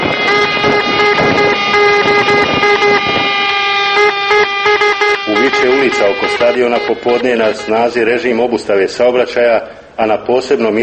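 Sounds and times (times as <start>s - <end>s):
car and motorcycle horns honking: 0.0s - 8.5s
street noise: 0.0s - 10.8s
speech: 6.0s - 10.8s.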